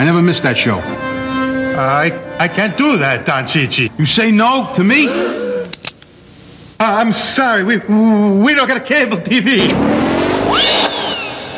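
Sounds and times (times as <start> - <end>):
speech: 0.2 - 1.2, 1.8 - 5.4, 6.8 - 10.0
car engine revving up as it pulls away: 9.6 - 11.5.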